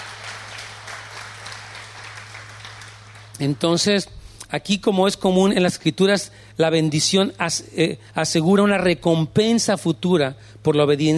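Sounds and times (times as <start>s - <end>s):
audience applauding: 0.0s - 3.8s
low constant hum: 0.0s - 11.1s
speech: 3.4s - 11.1s.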